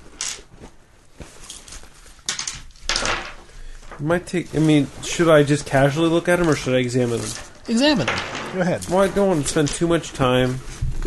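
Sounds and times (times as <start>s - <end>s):
dice clattering and rattling as they are handled: 2.3s - 3.4s, 7.2s - 9.1s
speech: 4.0s - 11.0s.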